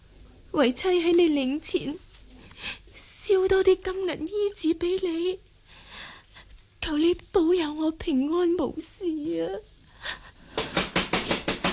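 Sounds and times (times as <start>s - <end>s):
speech: 0.5s - 2.0s, 2.6s - 5.5s, 6.9s - 10.2s
urgent knocking on a door: 10.6s - 11.7s.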